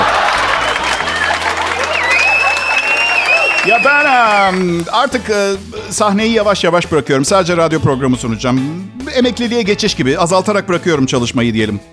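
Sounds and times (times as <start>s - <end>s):
crowd clapping: 0.0s - 5.2s
whistles: 0.5s - 4.4s
speech: 3.8s - 11.9s.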